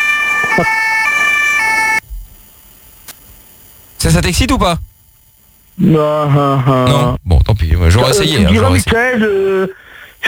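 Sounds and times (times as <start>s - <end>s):
police siren wailing: 0.0s - 2.0s
speech: 0.6s - 0.8s, 4.0s - 4.9s, 5.8s - 10.2s.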